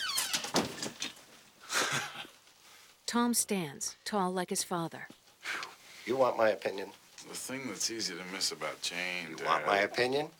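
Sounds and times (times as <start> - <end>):
door creaking on its hinges and swinging shut: 0.0 - 1.2
speech: 3.1 - 5.2, 6.1 - 10.3.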